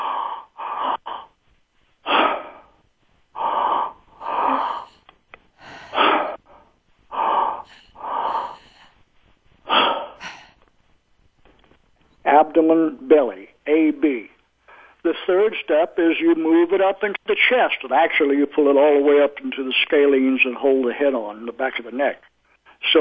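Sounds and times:
person doing two-step breathing from belly to midsection: 0:00.0 - 0:12.2
speech: 0:12.5 - 0:14.3, 0:15.0 - 0:22.3.

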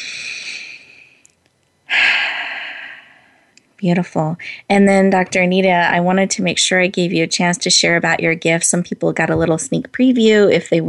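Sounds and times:
breathy exhale during a guided breathing moment: 0:00.0 - 0:01.2, 0:01.9 - 0:03.5
strong loud inhale during a guided breathing moment: 0:00.0 - 0:01.3, 0:01.9 - 0:03.5
speech: 0:03.8 - 0:10.8.

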